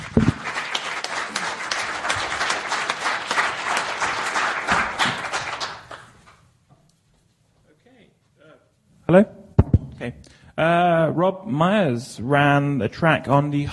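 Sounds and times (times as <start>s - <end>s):
crowd applauding: 0.0s - 6.4s
speech: 9.1s - 9.3s, 10.2s - 13.7s.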